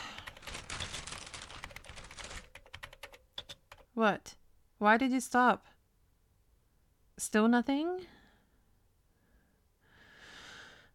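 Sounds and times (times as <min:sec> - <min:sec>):
typing on a computer keyboard: 0:00.0 - 0:04.0
speech: 0:04.0 - 0:05.7, 0:07.2 - 0:08.2.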